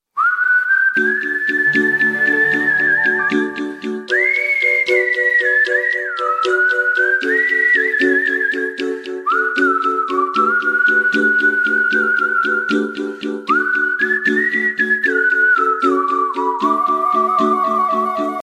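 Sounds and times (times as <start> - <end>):
whistled ringtone music: 0.3 - 18.4.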